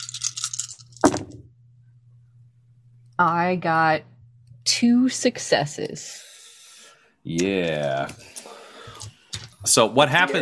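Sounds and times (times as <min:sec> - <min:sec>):
six dice rattling in a cup or cupped hands and clattering out: 0:00.0 - 0:01.3
low steady hum: 0:00.0 - 0:10.4
speech: 0:03.2 - 0:04.1, 0:04.7 - 0:06.3, 0:07.2 - 0:08.4, 0:09.6 - 0:10.4.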